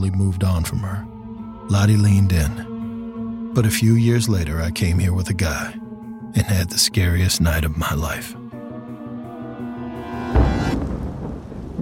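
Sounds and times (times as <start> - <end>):
speech: 0.0 - 2.7, 3.6 - 8.4
thunder crack and rumble: 10.4 - 11.8
steady heavy rain: 10.8 - 11.8.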